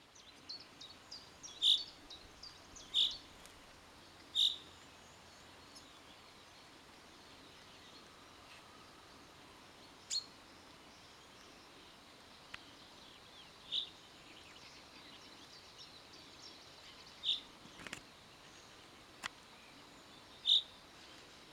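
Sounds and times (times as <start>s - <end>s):
common chaffinch Fringilla coelebs calls: 1.2s - 3.3s, 4.3s - 4.7s, 16.8s - 17.5s, 20.4s - 20.7s.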